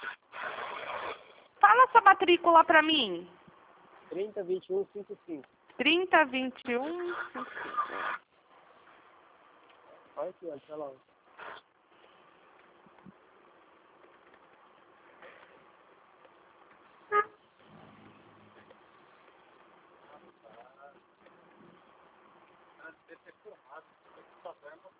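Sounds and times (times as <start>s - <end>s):
speech: 1.9s - 3.4s, 4.1s - 8.2s, 10.2s - 11.6s
passing truck engine rumble: 13.2s - 20.4s
short sharp truck horn toot: 17.1s - 17.4s.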